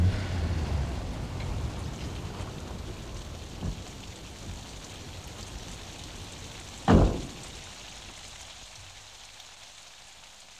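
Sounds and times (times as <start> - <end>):
steady rain falling: 0.0 - 10.5
faint thud: 6.9 - 7.4.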